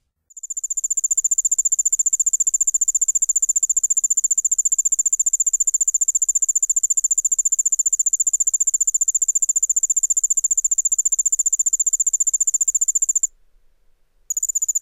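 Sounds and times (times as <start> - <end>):
Allard's ground cricket song of rapid high ticking pulses: 0.3 - 13.3, 14.3 - 14.8.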